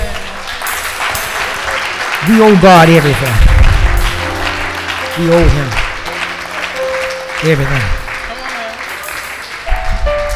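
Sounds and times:
crowd applauding: 0.0 - 10.3
speech: 2.2 - 3.5, 5.2 - 5.8, 7.4 - 8.0.

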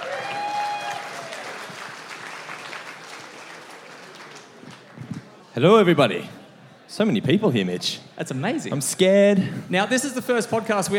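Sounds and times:
crowd applauding: 0.0 - 5.4
speech: 5.6 - 10.9.

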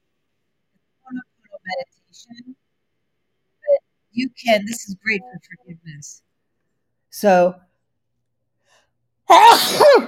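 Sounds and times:
speech: 2.1 - 2.6, 4.4 - 6.3, 7.2 - 7.7, 9.3 - 10.0
person sneezing: 9.3 - 10.0.

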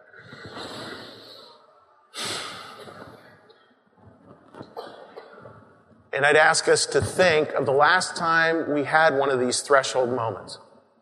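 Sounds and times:
audience at a talk taking a big breath together: 0.0 - 3.8
speech: 6.2 - 10.7.

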